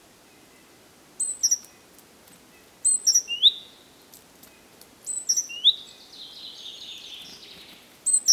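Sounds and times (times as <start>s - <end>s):
great tit Parus major calls: 1.2s - 1.8s, 2.6s - 3.7s, 5.1s - 8.3s.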